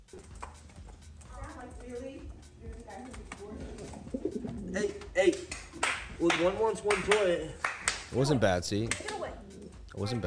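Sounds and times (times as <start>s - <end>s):
group of birds cooing: 1.6s - 6.0s, 9.4s - 9.9s
speech: 4.7s - 5.6s, 6.2s - 9.1s, 10.0s - 10.2s.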